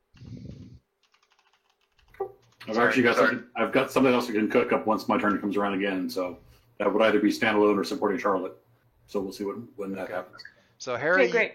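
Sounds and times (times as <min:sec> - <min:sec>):
typing on a computer keyboard: 0:01.0 - 0:02.7
speech: 0:02.7 - 0:11.5.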